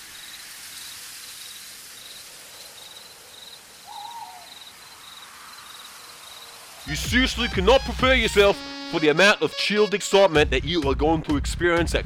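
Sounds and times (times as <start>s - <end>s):
insects chirping in a pulsing pattern: 0.0s - 6.9s
steady rain in a forest: 0.0s - 6.9s
owl hooting: 3.8s - 6.0s
speech: 6.8s - 12.0s.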